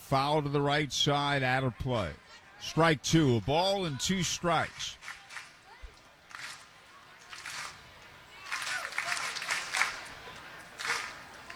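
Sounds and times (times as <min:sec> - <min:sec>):
speech: 0:00.1 - 0:05.1
steady murmur of stadium crowd noise: 0:01.1 - 0:11.5
rhythmic applause from stadium crowd of baseball fans: 0:04.1 - 0:11.5.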